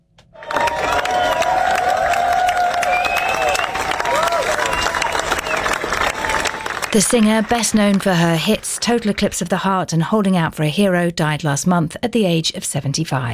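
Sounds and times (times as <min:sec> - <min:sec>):
scattered cheers from the crowd: 0:00.4 - 0:09.2
large outdoor crowd applauding as a funeral procession passes: 0:00.4 - 0:09.4
speech: 0:06.9 - 0:13.3.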